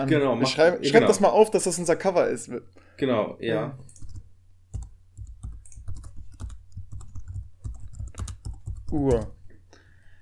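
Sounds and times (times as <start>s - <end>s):
speech: 0.0s - 4.0s, 8.9s - 9.4s
typing a search on a computer keyboard: 3.9s - 9.4s.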